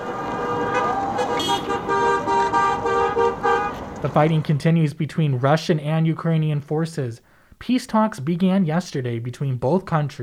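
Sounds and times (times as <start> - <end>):
car horns honking from passing cars in Phoenix: 0.0 - 4.2
steady street traffic noise in Phoenix: 0.0 - 4.9
speech: 4.0 - 10.2.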